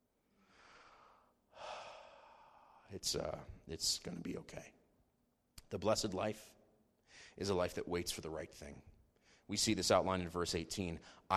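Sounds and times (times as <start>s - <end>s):
slow deep breath taken in unison during a sermon: 0.3s - 2.9s, 7.0s - 7.4s
speech: 2.9s - 4.8s, 5.7s - 8.9s, 9.5s - 11.3s.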